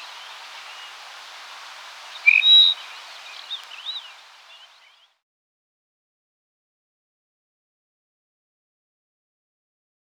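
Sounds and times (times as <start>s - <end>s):
Dupont's lark whistling song: 0.0s - 5.1s.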